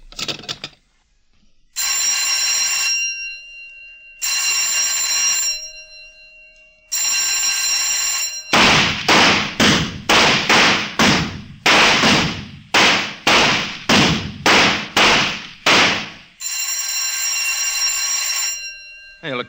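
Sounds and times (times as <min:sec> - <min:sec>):
shooting range bell ringing: 0:01.8 - 0:11.7, 0:14.6 - 0:19.4
rapid pistol shots at a shooting range: 0:08.5 - 0:16.3.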